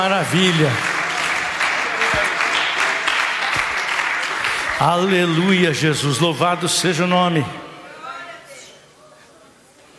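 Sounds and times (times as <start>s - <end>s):
speech: 0.0s - 0.9s, 4.8s - 7.6s
church audience clapping: 0.0s - 5.6s.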